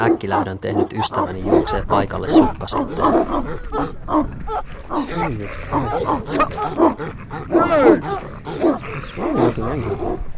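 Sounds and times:
pack of dogs snarling and barking in the dark: 0.0 - 10.3
speech: 0.0 - 10.3.

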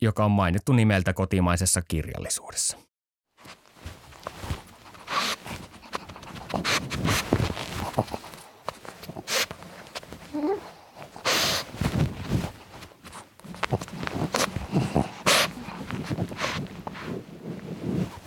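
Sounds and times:
speech: 0.0 - 3.6
scampering paws of two dogs playing outdoors: 3.4 - 17.3
rustling: 3.4 - 18.2.

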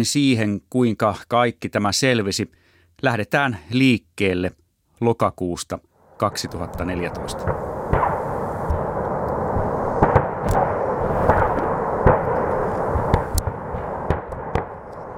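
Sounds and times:
speech: 0.0 - 7.6
chain of explosions at an ammunition depot near the Slovak border: 6.3 - 15.1
continuous heavy rumble of ammunition depot explosions: 6.4 - 15.1.

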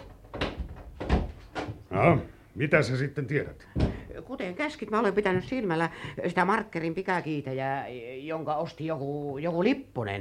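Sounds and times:
heavier thud of a door: 0.1 - 1.8, 3.7 - 4.1
speech: 2.0 - 10.1.

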